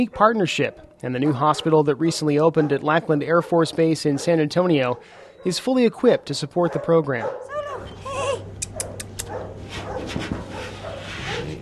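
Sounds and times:
young male Labrador retriever barking: 0:00.0 - 0:05.6, 0:06.7 - 0:07.9, 0:08.7 - 0:11.6
speech: 0:00.0 - 0:08.0
steady low hum: 0:07.4 - 0:11.6
young male Labrador retriever whimpering after sedation: 0:07.5 - 0:09.4.

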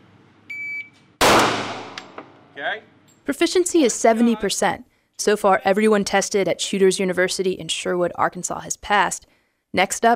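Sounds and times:
short electronic beep at a live fire exam: 0:00.5 - 0:00.9
single gunshot at a live fire exam: 0:01.2 - 0:02.4
speech: 0:02.6 - 0:10.1.

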